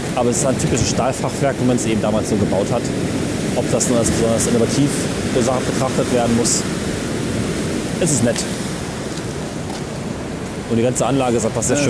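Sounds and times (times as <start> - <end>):
dense roar of heavy ocean surf: 0.0 - 11.8
speech: 0.2 - 6.8, 8.0 - 8.6, 10.7 - 11.8.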